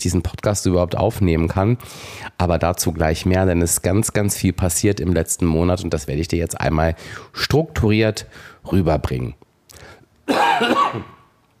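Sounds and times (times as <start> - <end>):
speech: 0.0 - 11.2
raspy throat-clearing cough: 10.3 - 11.3.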